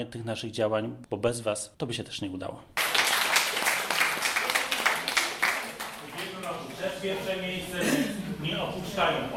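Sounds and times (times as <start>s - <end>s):
speech: 0.0s - 2.8s, 7.0s - 9.3s
audience applauding: 2.8s - 7.0s.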